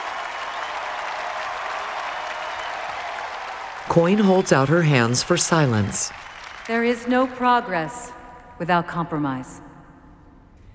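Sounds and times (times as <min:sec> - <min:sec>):
faint cheering: 0:00.0 - 0:07.1
large crowd below a balcony applauding: 0:00.0 - 0:08.0
speech: 0:03.9 - 0:09.6.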